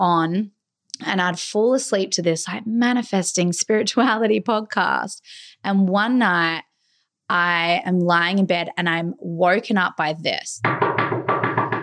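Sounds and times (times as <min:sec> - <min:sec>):
speech: 0:00.0 - 0:06.7, 0:07.3 - 0:10.8
firm knocking on a door at night: 0:10.6 - 0:11.8.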